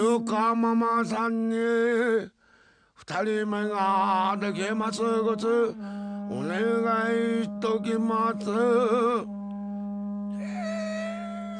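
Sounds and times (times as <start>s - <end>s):
speech: 0.0s - 2.4s, 3.0s - 9.4s
sustained wailing tone: 4.2s - 11.5s.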